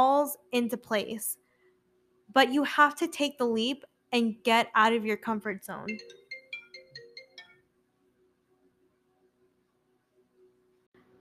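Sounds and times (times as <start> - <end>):
speech: 0.0 - 1.4, 2.3 - 6.2
mobile phone ringtone: 5.9 - 7.6.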